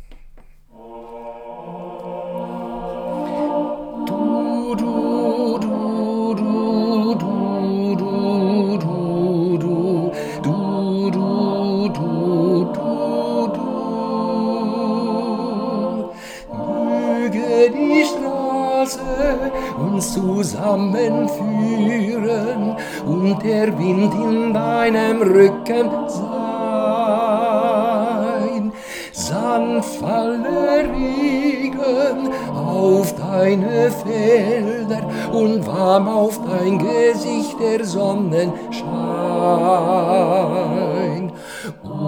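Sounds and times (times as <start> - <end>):
tenor singing: 0.7 - 42.0.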